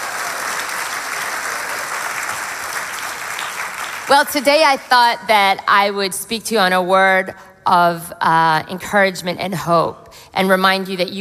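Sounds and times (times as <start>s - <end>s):
audience clapping for the mothers present: 0.0s - 5.0s
speech: 4.1s - 11.1s.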